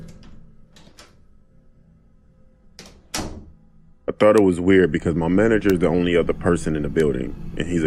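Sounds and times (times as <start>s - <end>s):
bathroom door latch clicks and rattles: 0.0s - 1.2s, 2.8s - 3.5s
speech: 4.2s - 7.8s.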